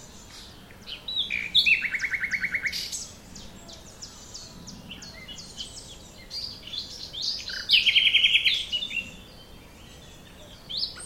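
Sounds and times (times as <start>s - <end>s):
Luscinia megarhynchos common nightingale singing: 0.0s - 11.0s.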